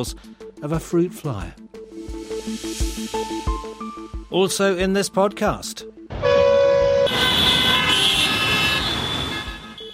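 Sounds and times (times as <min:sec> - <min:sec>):
speech: 0:00.0 - 0:01.6, 0:02.4 - 0:03.4, 0:04.3 - 0:06.4
car horns honking in busy city traffic: 0:06.1 - 0:09.9.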